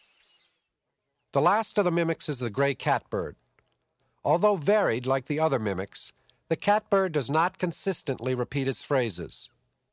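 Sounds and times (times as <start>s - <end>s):
speech: 1.3s - 3.5s, 4.3s - 9.6s
brown thrasher singing: 4.3s - 9.5s.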